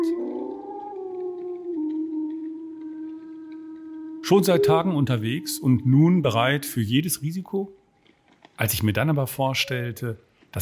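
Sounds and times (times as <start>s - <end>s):
wolf howling: 0.0s - 7.2s
speech: 4.3s - 7.8s, 8.6s - 10.5s.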